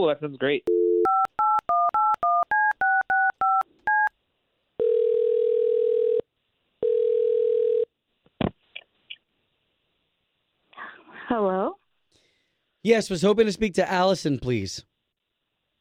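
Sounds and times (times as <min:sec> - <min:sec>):
speech: 0:00.0 - 0:00.7, 0:12.8 - 0:14.9
telephone ringing tones: 0:00.7 - 0:04.1, 0:04.8 - 0:06.2, 0:06.8 - 0:07.9
touch-tone telephone keypad beeps: 0:00.7 - 0:04.1.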